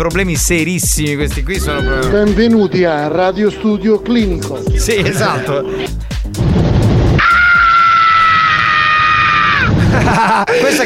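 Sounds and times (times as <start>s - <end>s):
speech: 0.0s - 6.7s, 10.1s - 10.8s
laughter: 4.7s - 5.9s, 9.7s - 10.8s
loud sustained scream sound effect: 5.2s - 9.8s.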